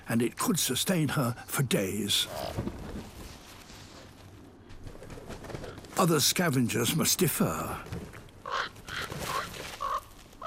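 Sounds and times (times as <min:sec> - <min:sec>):
speech: 0:00.1 - 0:02.8, 0:06.0 - 0:08.8
crows cawing around an eagle scavenging a dead fox in winter: 0:08.4 - 0:10.4.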